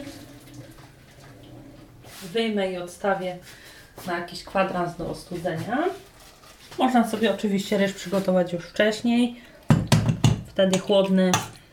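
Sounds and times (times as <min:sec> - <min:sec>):
cooking water pouring as cooked rice is drained: 0:00.0 - 0:02.4
speech: 0:02.2 - 0:06.0, 0:06.8 - 0:09.5, 0:10.6 - 0:11.5.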